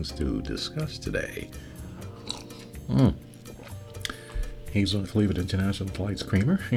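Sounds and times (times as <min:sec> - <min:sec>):
speech: 0:00.0 - 0:01.8, 0:02.9 - 0:03.2, 0:04.7 - 0:06.7
slurping sip of chocolate nut coffee: 0:01.7 - 0:04.6.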